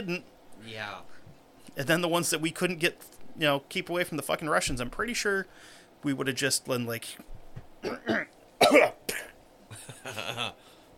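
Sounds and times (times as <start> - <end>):
speech: 0.0 - 9.3, 10.0 - 10.6
harsh coughing: 7.8 - 9.4.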